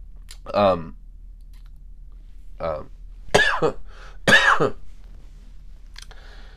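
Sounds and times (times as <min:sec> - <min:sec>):
sick man coughing in short harsh bursts: 0:03.3 - 0:04.8.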